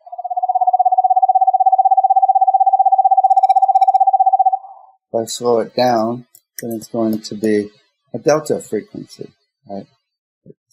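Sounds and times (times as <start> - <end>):
screech owl trilling: 0.0 - 4.9
speech: 5.2 - 10.0.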